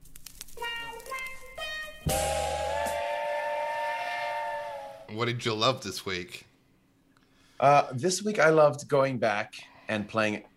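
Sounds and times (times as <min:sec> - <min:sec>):
steam train whistle blowing: 0:01.6 - 0:05.1
speech: 0:05.2 - 0:06.5, 0:07.6 - 0:10.5.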